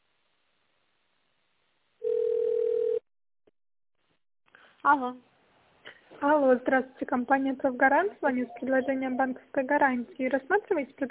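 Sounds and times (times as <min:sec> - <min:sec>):
telephone ringback tone while on hold for a company's reception line: 0:02.0 - 0:03.0
speech: 0:04.8 - 0:05.3, 0:06.2 - 0:11.0.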